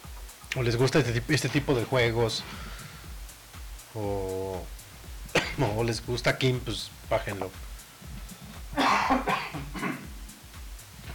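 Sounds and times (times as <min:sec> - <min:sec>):
low hum: 0:00.0 - 0:11.1
speech: 0:00.6 - 0:02.8, 0:03.9 - 0:04.8, 0:05.6 - 0:07.7
harsh coughs: 0:05.3 - 0:05.8, 0:08.7 - 0:10.2.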